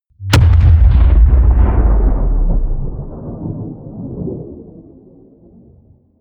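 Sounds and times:
explosion: 0.1s - 5.2s.

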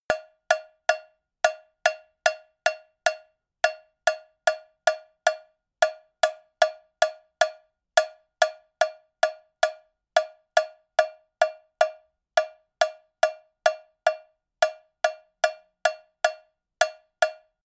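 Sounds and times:
cowbell rhythm: 0.1s - 17.6s.

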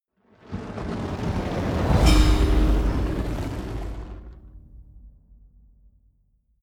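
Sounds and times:
magic fire bowl whoosh: 0.3s - 4.8s.

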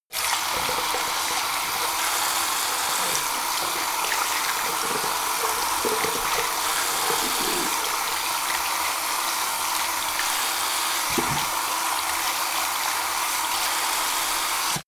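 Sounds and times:
sink forced flow wash in a bathroom: 0.1s - 14.8s.

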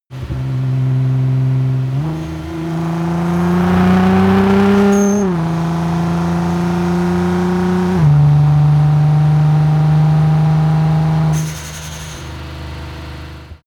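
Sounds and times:
Nissan GT-R 35 car accelerating fast: 0.0s - 11.7s.

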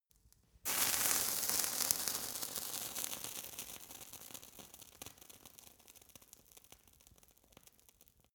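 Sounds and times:
fire torch sizzling: 0.7s - 4.2s.

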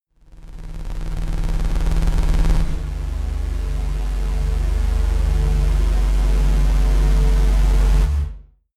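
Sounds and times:
digital bass double swell: 0.5s - 8.4s.

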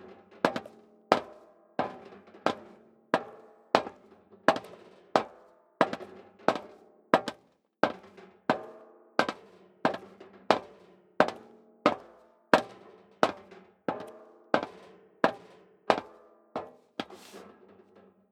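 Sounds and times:
footsteps in leather shoes: 0.5s - 1.3s, 4.5s - 8.1s, 9.2s - 17.4s.

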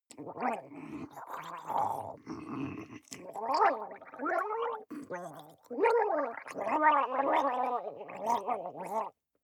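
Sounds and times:
female water monster gargling and blabbering: 3.2s - 9.1s.

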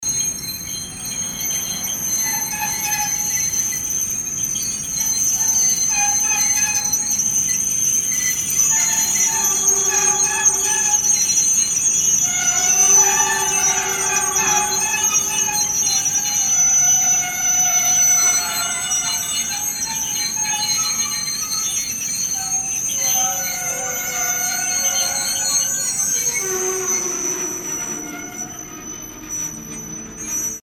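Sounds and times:
train stopping: 0.0s - 30.6s.

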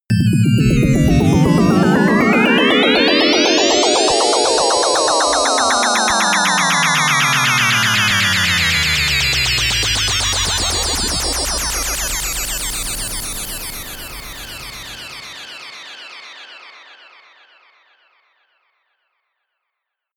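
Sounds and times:
atonal rhythm drop riser: 0.1s - 15.7s.

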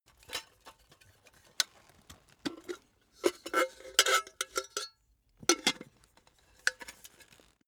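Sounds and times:
can handling: 0.1s - 7.6s.

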